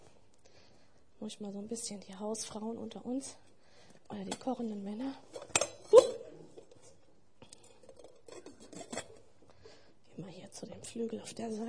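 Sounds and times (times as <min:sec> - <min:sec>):
speech: 0:01.2 - 0:03.5, 0:04.1 - 0:05.4, 0:10.6 - 0:11.6
cooking pot scraping and rattling: 0:05.2 - 0:07.0, 0:07.6 - 0:09.3
cooking pot being handled, metallic clinks: 0:05.3 - 0:06.0, 0:07.8 - 0:09.2.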